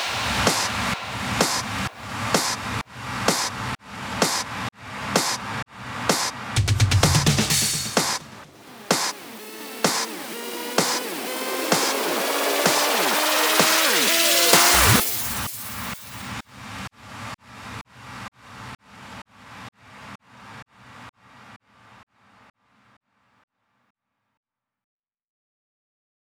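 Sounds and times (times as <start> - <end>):
drum fills: 0.0 - 3.6, 5.1 - 16.3.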